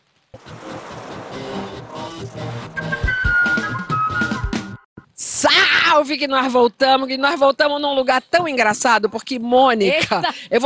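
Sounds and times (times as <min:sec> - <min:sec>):
podcast segment-transition jingle: 0:00.4 - 0:04.3
speech: 0:06.0 - 0:10.6.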